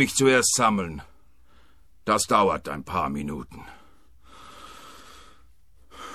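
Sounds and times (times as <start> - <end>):
speech: 0.0 - 1.1, 2.1 - 3.8
person breathing in and out inside a stuffy cupboard: 1.3 - 1.9, 3.6 - 6.1.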